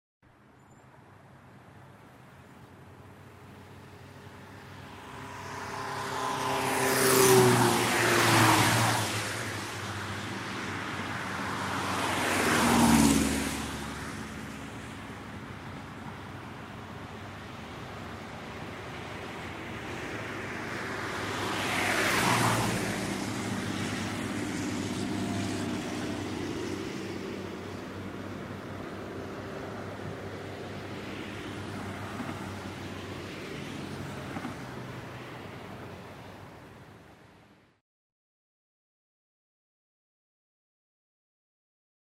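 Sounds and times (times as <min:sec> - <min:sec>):
race cars at a motor racing circuit: 0:04.0 - 0:35.5.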